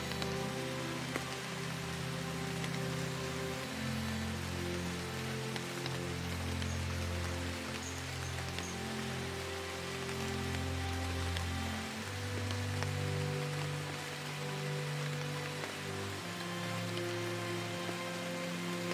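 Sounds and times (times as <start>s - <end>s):
rain on foliage: 0.0s - 18.9s
slow low music holding long notes: 0.0s - 18.9s.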